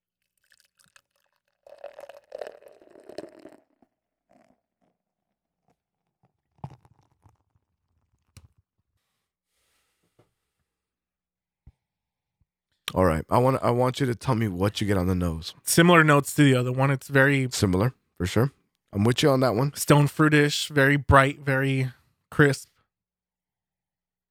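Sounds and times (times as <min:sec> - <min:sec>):
hazy beer being poured into a glass: 0:00.2 - 0:03.9
speech: 0:13.0 - 0:22.7.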